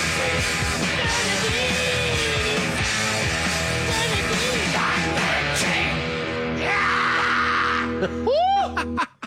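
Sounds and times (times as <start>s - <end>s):
loud dense rock song: 0.0s - 8.2s
singer's sustained scream at the end of a song: 3.9s - 8.9s
laughter: 7.8s - 9.2s.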